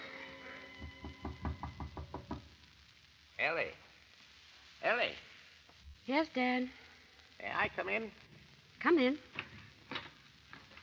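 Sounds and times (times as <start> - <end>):
faint steady hum: 0.0 - 10.8
knocks on a wooden door: 0.8 - 2.5
speech: 3.4 - 3.8, 4.8 - 5.3, 6.1 - 6.8, 7.4 - 8.2, 8.8 - 9.3.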